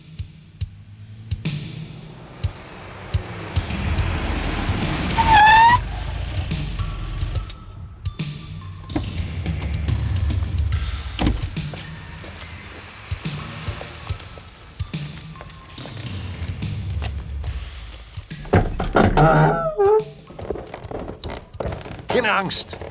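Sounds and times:
car engine rumbling on Mondscheingasse: 0.0 - 22.9
squeaks: 4.6 - 9.7, 18.3 - 22.1
speech: 22.2 - 22.9.

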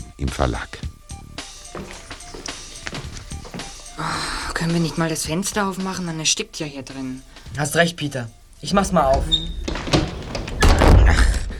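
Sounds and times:
speech: 0.2 - 0.8, 4.0 - 9.8
door slammed shut by a draft: 8.8 - 11.5.

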